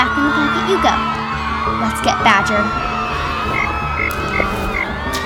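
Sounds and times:
speech: 0.1s - 2.9s
chorus of frogs croaking and chirping: 2.8s - 5.2s.

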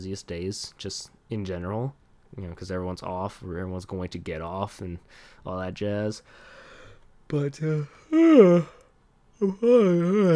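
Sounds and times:
speech: 0.0s - 6.6s, 7.3s - 8.8s, 9.4s - 10.3s
person yawning: 7.7s - 10.3s.

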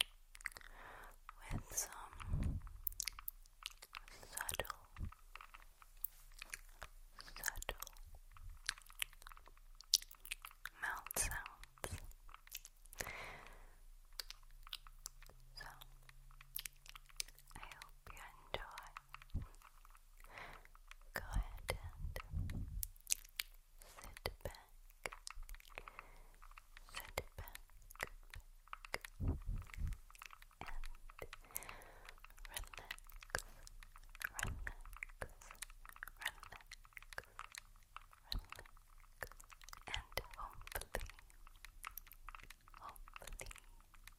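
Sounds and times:
soft wet mouth clicks, smacks and chewing-like crunches: 0.0s - 44.1s
brief low hum: 21.6s - 23.0s, 29.1s - 31.0s.

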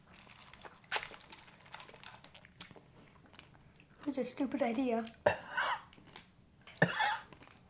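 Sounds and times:
speech: 4.1s - 5.4s
person coughing after eating spicy candy powder: 5.2s - 5.9s, 6.8s - 7.3s.

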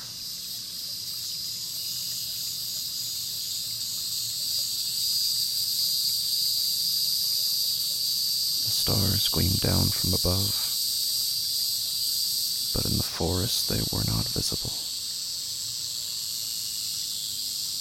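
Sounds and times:
locusts humming at nightfall by a pond: 8.6s - 10.8s, 12.8s - 15.0s
speech: 8.9s - 10.7s, 12.8s - 14.9s.

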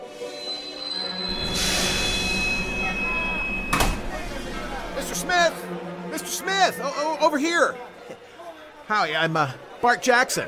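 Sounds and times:
hiss of air: 1.3s - 5.2s
narrow-gauge train running on rails: 1.3s - 5.3s
sharp clank: 1.3s - 5.3s
speech: 6.4s - 8.2s, 8.9s - 10.4s.

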